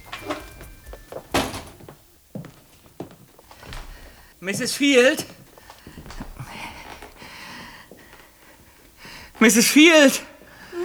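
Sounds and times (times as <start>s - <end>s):
door pushed open slowly with a creaking scraping sweep: 0.0s - 2.0s
speech: 4.4s - 5.4s, 9.4s - 10.3s.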